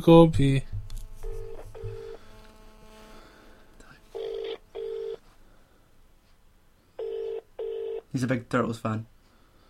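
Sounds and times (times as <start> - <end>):
speech: 0.0 - 0.7, 8.2 - 9.1
faint low hum: 0.0 - 9.6
phone dialing tones over a speakerphone: 1.2 - 2.2, 4.1 - 5.2, 7.0 - 8.1.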